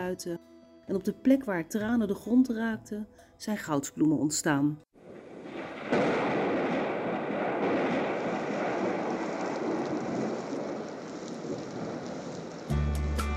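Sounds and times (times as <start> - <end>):
speech: 0.0 - 4.8
low rumble of thunder: 5.0 - 12.8
steady dense rain pattering: 5.0 - 12.9.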